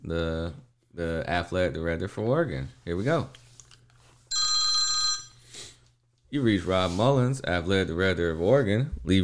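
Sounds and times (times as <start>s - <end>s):
speech: 0.1s - 3.4s, 6.3s - 9.2s
telephone ringing: 4.3s - 5.4s.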